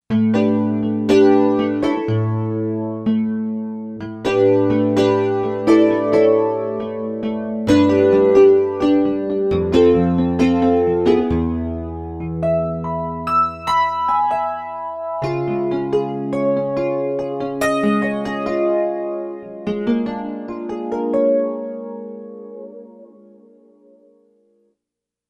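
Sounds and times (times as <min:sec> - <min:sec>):
nylon Rhodes factory patch on Roland SC-880: 0:00.1 - 0:24.3.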